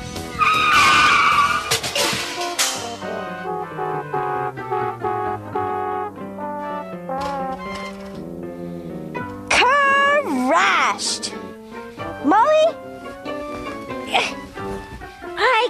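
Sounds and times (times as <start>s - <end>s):
race car tires screeching while skidding on a track: 0.0s - 8.8s
steady music-like tones: 0.0s - 15.6s.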